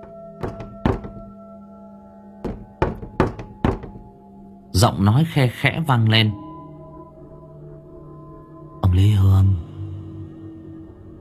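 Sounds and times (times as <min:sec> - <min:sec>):
knocking on a wooden window facing a garden: 0:00.0 - 0:01.4, 0:02.4 - 0:04.1
speech: 0:04.8 - 0:06.4.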